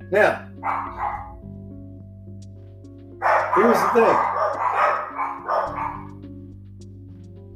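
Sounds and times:
speech: 0.1 - 0.9, 3.6 - 4.3
dogs barking: 0.4 - 1.5, 3.2 - 6.2.

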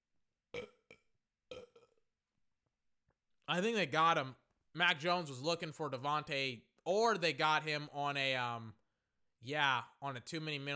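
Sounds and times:
person burping: 0.5 - 2.1
speech: 3.5 - 8.8, 9.4 - 10.7.

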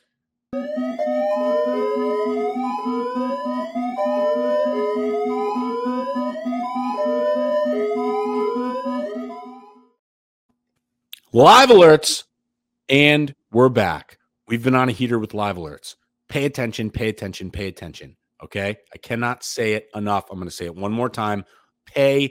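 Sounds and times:
siren wailing: 0.6 - 9.8
speech: 11.4 - 12.3, 12.9 - 22.3.

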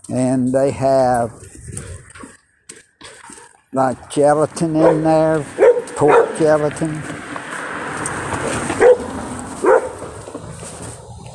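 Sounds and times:
speech: 0.1 - 1.5, 3.7 - 7.1
dog barking: 4.8 - 6.5, 8.8 - 10.0.

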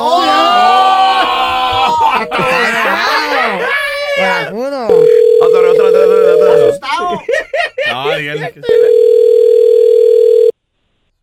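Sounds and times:
laughter: 1.0 - 4.5, 5.4 - 9.0
telephone ringing tone of an unanswered call: 4.9 - 6.8, 8.7 - 10.5
speech: 8.0 - 9.3.

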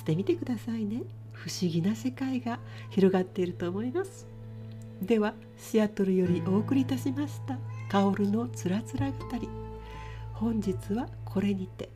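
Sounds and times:
speech: 0.0 - 4.3, 5.0 - 9.6, 10.4 - 11.9
cat meowing: 2.4 - 3.3, 7.6 - 8.3.

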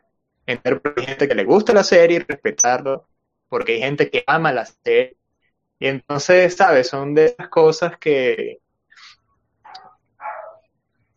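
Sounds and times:
speech: 0.5 - 5.2, 5.8 - 8.6
dog barking: 9.7 - 10.7.

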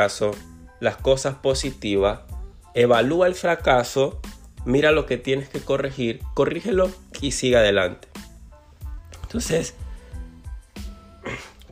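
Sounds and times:
speech: 0.0 - 8.1, 9.3 - 9.8
man with a slight cold coughing or clearing throat: 11.1 - 11.7.

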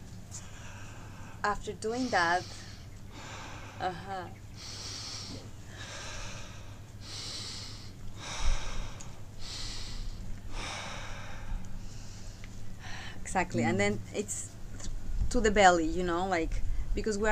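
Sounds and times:
low hum: 0.0 - 17.3
continuous inhaling and exhaling breathwork: 0.4 - 13.2
speech: 1.4 - 2.6, 3.8 - 5.4, 13.3 - 14.6, 15.3 - 17.3.

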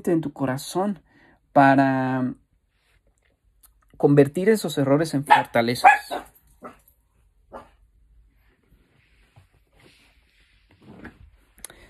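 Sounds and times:
speech: 0.0 - 1.0, 1.6 - 2.4, 4.0 - 6.8
small dog barking in sharp high bursts: 5.3 - 6.8, 7.5 - 7.8.

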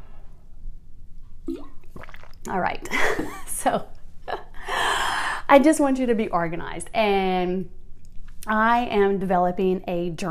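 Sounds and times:
quiet room hum: 0.0 - 10.2
sipping water: 1.4 - 2.6
speech: 2.5 - 4.0, 5.5 - 7.8, 8.4 - 10.2.

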